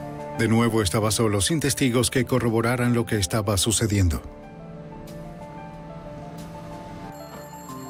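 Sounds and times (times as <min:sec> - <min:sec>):
speech: 0:00.4 - 0:04.4
telephone ringing in a phone booth at a local store: 0:07.1 - 0:07.8.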